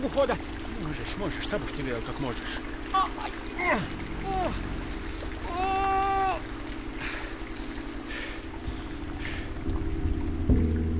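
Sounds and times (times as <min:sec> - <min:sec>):
speech: 0:00.0 - 0:04.8
steady heavy rain hissing: 0:00.0 - 0:10.9
strained voices crying out: 0:02.8 - 0:04.8, 0:05.4 - 0:06.6.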